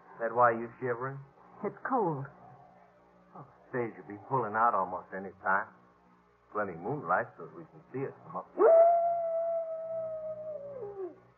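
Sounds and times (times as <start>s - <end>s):
speech: 0.2s - 2.4s, 3.4s - 5.8s, 6.5s - 8.9s
coyote howling on a cold moonlit night: 8.5s - 11.3s.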